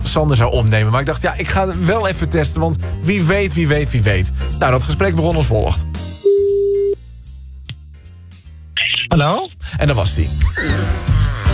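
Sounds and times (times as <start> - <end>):
speech: 0.1 - 6.0, 9.1 - 11.1
telephone ringback tone from an outgoing call: 6.2 - 7.0.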